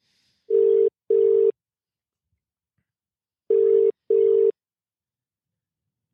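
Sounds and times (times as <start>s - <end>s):
electronic double-pulse phone ringback tone: 0.5s - 1.6s, 3.5s - 4.6s.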